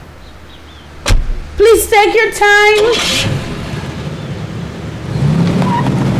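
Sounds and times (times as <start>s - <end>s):
speech: 1.6s - 3.4s
car engine rumbling as the vehicle speeds off: 2.8s - 6.1s.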